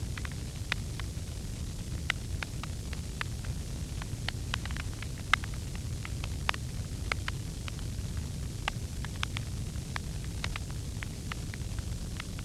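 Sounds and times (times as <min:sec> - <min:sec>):
tree burning: 0:00.0 - 0:12.4.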